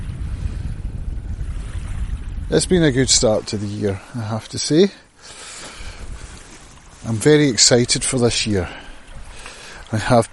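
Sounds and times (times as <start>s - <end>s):
ocean waves on a beach on a sunny morning: 0.0s - 10.3s
wind buffeting: 0.0s - 10.3s
speech: 2.5s - 5.4s, 7.1s - 8.9s, 9.9s - 10.3s.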